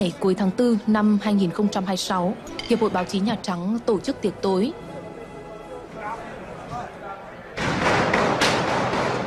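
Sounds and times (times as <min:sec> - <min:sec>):
speech: 0:00.0 - 0:04.9
murmuring voices: 0:04.7 - 0:07.7
loud sharp cracking gunshots: 0:07.6 - 0:09.2.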